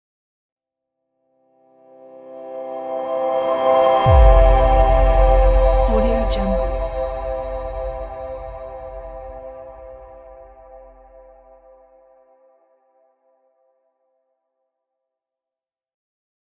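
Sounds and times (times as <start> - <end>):
clean ambient logo jingle: 2.4 - 11.8.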